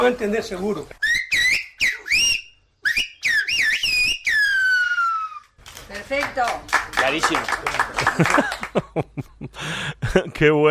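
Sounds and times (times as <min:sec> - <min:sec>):
speech: 0:00.0 - 0:01.0, 0:06.1 - 0:10.7
Silbo Gomero whistled language phrase from La Gomera: 0:01.0 - 0:05.5
laughter: 0:07.0 - 0:10.4.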